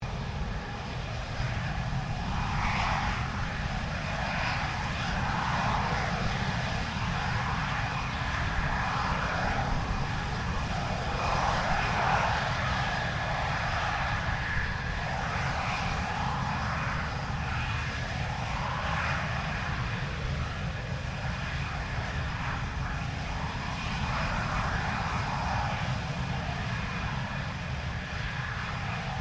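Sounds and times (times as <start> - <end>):
F-16 Falcon jet aircraft idling: 0.0 - 29.1.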